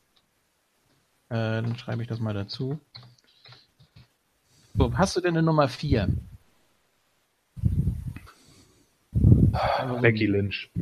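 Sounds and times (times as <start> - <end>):
speech: 1.3 - 3.2, 4.8 - 6.3, 9.6 - 10.8
person breathing into a microphone: 7.6 - 10.0.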